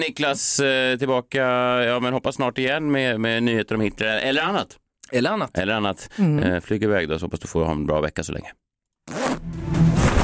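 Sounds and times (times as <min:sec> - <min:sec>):
speech: 0:00.0 - 0:09.6
zipper being pulled down: 0:09.1 - 0:10.1.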